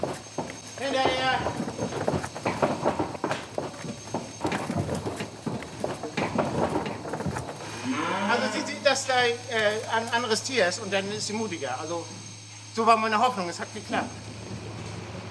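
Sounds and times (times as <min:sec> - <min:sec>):
rustling movement: 0:00.0 - 0:08.8
cow hoof steps shuffling: 0:00.0 - 0:10.4
cow lowing: 0:04.7 - 0:08.9
speech: 0:09.2 - 0:12.2, 0:12.8 - 0:14.3.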